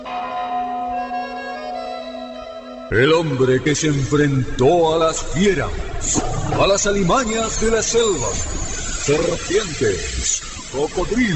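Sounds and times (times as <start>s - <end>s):
bells tolling at a spiritual sanctuary: 0.0s - 11.3s
speech: 2.9s - 11.3s.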